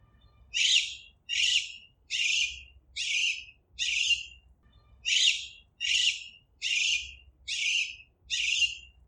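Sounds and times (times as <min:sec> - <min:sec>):
Alexandrine parakeet singing: 0:00.2 - 0:09.0.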